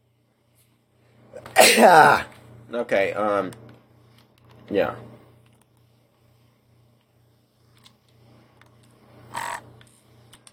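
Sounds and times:
person sneezing: 1.4s - 2.3s
speech: 1.7s - 3.6s, 4.7s - 5.1s.

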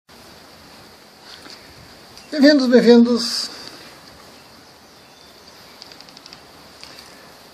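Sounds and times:
steady hiss: 0.1s - 7.5s
small birds chirping faintly: 1.4s - 2.6s, 3.2s - 7.4s
speech: 2.3s - 3.6s.

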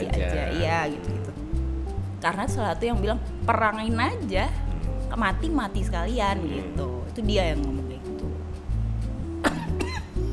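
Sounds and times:
low steady hum: 0.0s - 10.3s
speech: 0.2s - 1.4s, 2.2s - 7.8s
coughs: 9.4s - 10.2s.

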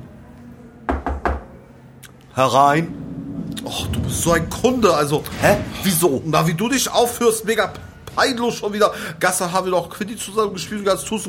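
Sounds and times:
knocking on a door: 0.9s - 1.5s
speech: 2.4s - 3.0s, 3.6s - 11.2s.

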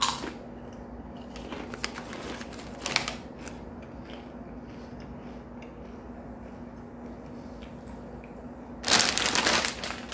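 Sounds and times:
faint steady hum: 0.0s - 10.1s
crunching while eating spicy Doritos tortilla chips: 1.3s - 4.2s, 8.8s - 10.1s.

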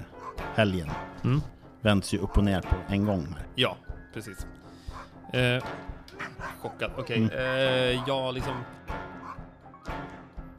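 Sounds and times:
dog barking: 0.1s - 0.5s, 4.9s - 5.2s, 6.1s - 7.1s, 7.9s - 8.2s, 9.2s - 9.5s
speech: 0.6s - 4.6s, 5.3s - 8.8s.

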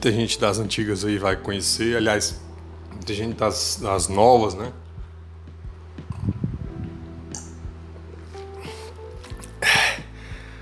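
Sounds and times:
speech: 0.0s - 4.8s
person gulping water: 6.1s - 6.5s
breathy exhale after swallowing: 9.6s - 10.6s.

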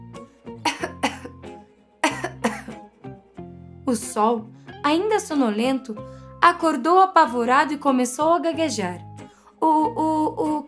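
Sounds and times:
person coughing harshly: 0.6s - 1.4s, 2.0s - 2.8s
speech: 3.9s - 10.6s
person breathing: 6.0s - 6.4s, 9.2s - 9.6s.

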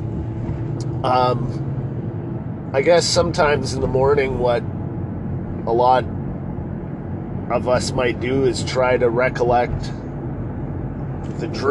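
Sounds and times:
low engine rumble from inside a moving car: 0.0s - 11.7s
speech: 1.0s - 1.7s, 2.7s - 4.8s, 5.6s - 6.2s, 7.5s - 10.0s, 11.4s - 11.7s.

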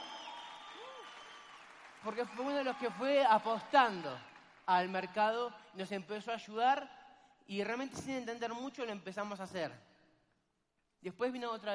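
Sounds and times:
audience applauding: 0.0s - 5.0s
speech: 2.0s - 9.9s, 11.0s - 11.7s.

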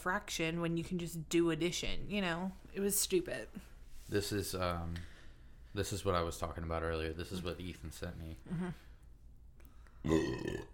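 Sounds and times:
speech: 0.0s - 5.1s, 5.8s - 8.9s, 10.0s - 10.7s
loud drawn-out burp after drinking light beer: 10.0s - 10.7s.

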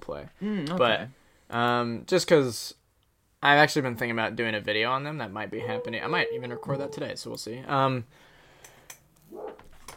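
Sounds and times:
speech: 0.1s - 2.8s, 3.4s - 8.3s
dog barking faintly in the background: 5.6s - 7.1s.

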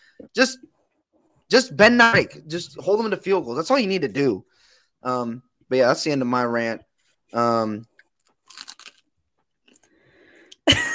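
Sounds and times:
speech: 0.2s - 0.7s, 1.5s - 7.9s
loud crunchy chewing of food: 8.0s - 10.0s.

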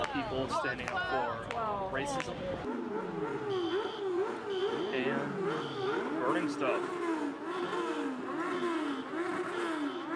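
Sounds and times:
speech: 0.2s - 7.9s
car engine revving as the car is driven through a crowd during riots: 2.6s - 10.1s.

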